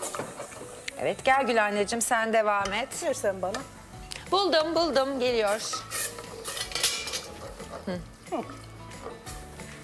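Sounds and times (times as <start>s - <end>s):
speech: 1.0s - 6.0s, 7.9s - 8.6s
silicone whisk beating flour in a pot: 5.6s - 9.2s.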